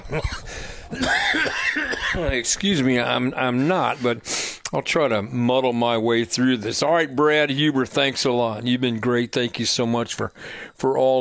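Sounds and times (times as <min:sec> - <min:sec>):
man with a lingering cough coughing: 0:00.0 - 0:02.4
speech: 0:00.1 - 0:11.1.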